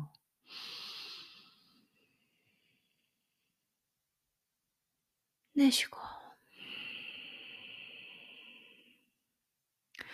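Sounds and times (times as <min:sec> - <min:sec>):
long deep inhale during yoga breathing practice: 0:00.4 - 0:03.3, 0:06.4 - 0:09.2
speech: 0:05.6 - 0:06.1.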